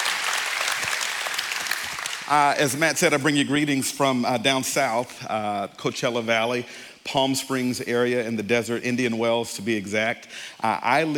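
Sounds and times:
crowd applauding with many hands clapping: 0.0 - 2.7
speech: 2.3 - 11.1.

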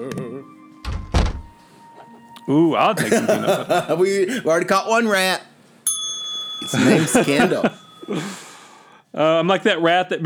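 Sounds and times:
laughter: 0.0 - 0.5, 2.7 - 5.2, 6.6 - 8.6
door opening with a dull clunk: 0.8 - 1.6
heavier thunk: 0.9 - 1.5
speech: 2.4 - 5.5, 6.7 - 8.4, 9.2 - 10.2.

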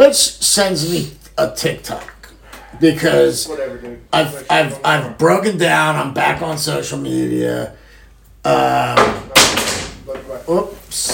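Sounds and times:
speech: 0.0 - 2.1, 2.7 - 7.8, 8.4 - 9.3, 10.1 - 11.1
long wooden pool cue knocked over by a cat clattering: 9.0 - 10.3.

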